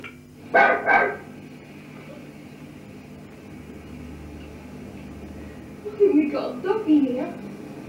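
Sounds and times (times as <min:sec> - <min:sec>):
low hum: 0:00.0 - 0:07.8
dog-like barking: 0:00.5 - 0:01.4.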